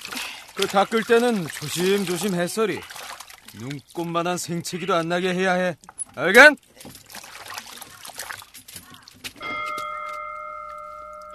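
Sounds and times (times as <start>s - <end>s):
speech: 0.6s - 7.0s
school bell ringing to call teachers' meeting: 9.4s - 11.3s.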